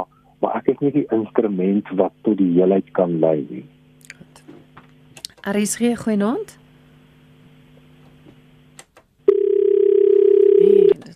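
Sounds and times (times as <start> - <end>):
speech: 0.7 - 3.8, 5.4 - 6.6
telephone dial tone from a failed call-in telephone line: 9.2 - 11.0.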